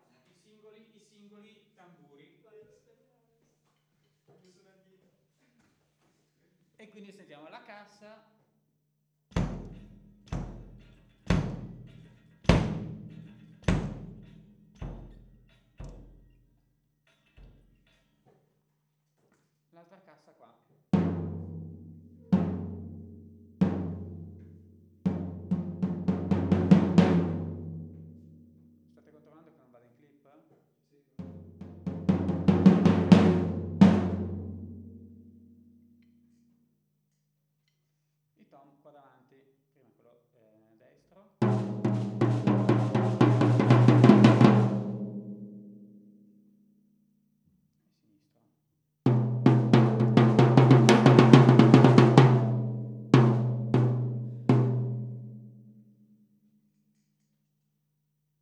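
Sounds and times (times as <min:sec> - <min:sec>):
drum kit recorded with condenser microphone: 0:09.3 - 0:16.4, 0:21.0 - 0:28.2, 0:31.2 - 0:35.0, 0:41.4 - 0:45.4, 0:49.1 - 0:55.4.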